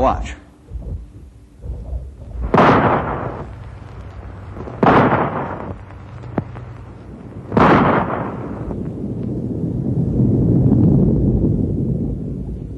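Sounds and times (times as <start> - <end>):
low rumble: 0.4 - 12.7
rifle shots echoing across snowy mountains during a survey: 2.4 - 8.8.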